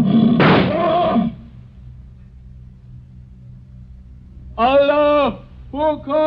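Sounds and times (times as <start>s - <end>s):
lion giving a rasping roar: 0.0s - 1.5s
point-blank rifle shot fired at a lion: 0.4s - 0.8s
speech: 4.6s - 6.2s.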